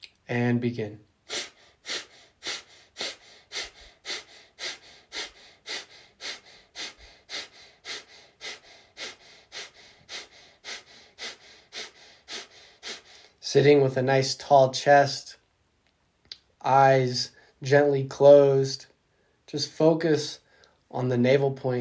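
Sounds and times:
speech: 0:00.3 - 0:01.1, 0:13.5 - 0:15.3, 0:16.7 - 0:18.9, 0:19.5 - 0:21.7
breath of fire breathing exercise rapid forceful exhalations: 0:01.2 - 0:13.5.

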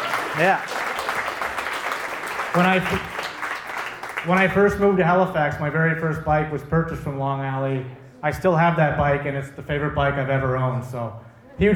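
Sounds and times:
crowd applause: 0:00.0 - 0:04.7
speech: 0:00.4 - 0:00.8, 0:02.6 - 0:03.2, 0:04.2 - 0:11.7.

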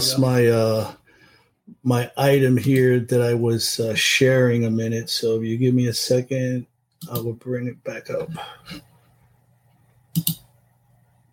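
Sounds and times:
speech: 0:00.0 - 0:01.0, 0:01.8 - 0:08.9, 0:10.2 - 0:10.4
faint low hum: 0:00.0 - 0:11.3
computer mouse or key clicks during an online meeting: 0:10.1 - 0:10.5.

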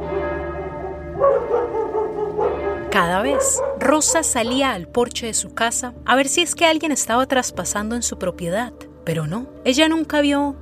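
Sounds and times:
dogs barking at night: 0:00.5 - 0:04.9
speech: 0:02.9 - 0:10.6.

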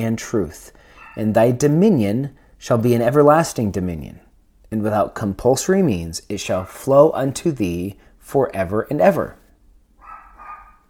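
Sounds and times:
speech: 0:00.0 - 0:09.4
dog barking: 0:00.9 - 0:01.4, 0:10.0 - 0:10.8.

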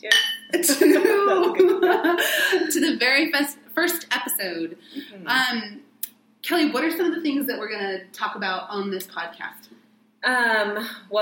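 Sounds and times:
speech: 0:00.0 - 0:00.8, 0:02.8 - 0:11.2
wine glasses clinking in a toast: 0:00.0 - 0:01.2
people laughing: 0:00.6 - 0:02.8.

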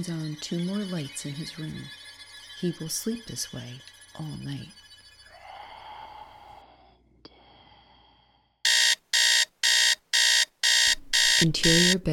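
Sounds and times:
alarm clock beeping: 0:00.0 - 0:04.7, 0:08.7 - 0:12.1
speech: 0:00.0 - 0:04.8, 0:11.4 - 0:12.1.

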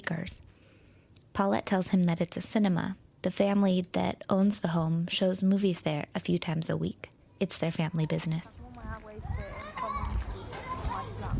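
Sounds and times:
speech: 0:00.2 - 0:00.5, 0:01.4 - 0:08.6
children chattering and shouting at play outdoors: 0:07.2 - 0:11.3.

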